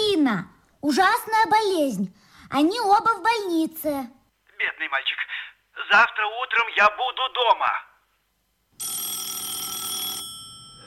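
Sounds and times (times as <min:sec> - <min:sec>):
speech: 0:00.3 - 0:07.9
telephone bell ringing: 0:08.8 - 0:10.8.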